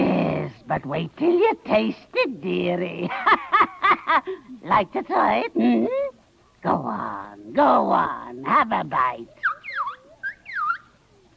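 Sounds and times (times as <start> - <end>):
speech: 0.7 - 9.4
laughter: 3.0 - 4.5
bird squawking loudly: 9.3 - 11.0.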